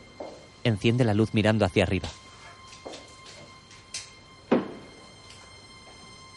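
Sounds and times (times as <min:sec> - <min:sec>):
speech: 0:00.6 - 0:02.2
rooftop door swung open and shut by the wind: 0:04.5 - 0:05.0.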